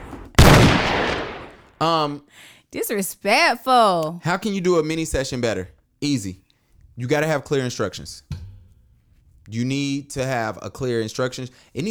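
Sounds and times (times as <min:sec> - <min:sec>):
gunshot sound effect from a play gun: 0:00.0 - 0:01.8
speech: 0:01.8 - 0:06.4, 0:07.0 - 0:08.4, 0:09.5 - 0:11.8.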